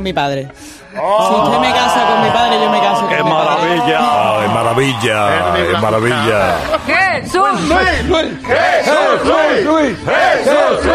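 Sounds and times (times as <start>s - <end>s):
speech: 0.0s - 10.9s
loud crowd cheering and whooping: 1.0s - 6.8s.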